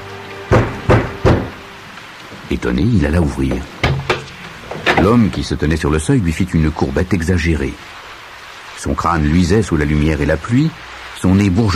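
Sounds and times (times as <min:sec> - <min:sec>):
violent knocks on a door: 0:00.5 - 0:01.5, 0:03.5 - 0:04.3
speech: 0:02.5 - 0:03.8, 0:05.0 - 0:07.9, 0:08.8 - 0:11.7.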